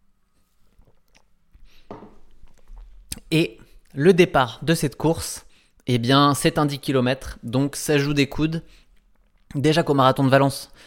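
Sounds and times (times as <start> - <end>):
slurp and gulp of water: 0.7 - 1.4
soft wet mouth clicks: 3.1 - 3.3
speech: 3.3 - 8.8, 9.5 - 10.8.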